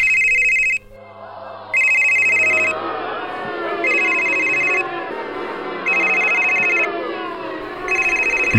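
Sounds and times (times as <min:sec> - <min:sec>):
loud electronic mobile phone ringtone in an opera house audience: 0:00.0 - 0:00.9, 0:01.8 - 0:02.8, 0:03.8 - 0:04.9, 0:05.8 - 0:06.9, 0:07.9 - 0:08.5
Baroque operatic singing: 0:00.8 - 0:08.5.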